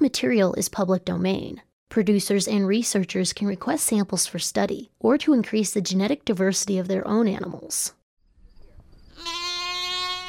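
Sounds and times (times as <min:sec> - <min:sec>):
speech: 0:00.0 - 0:08.0
Black Mountain Welsh sheep bleating: 0:09.1 - 0:10.2.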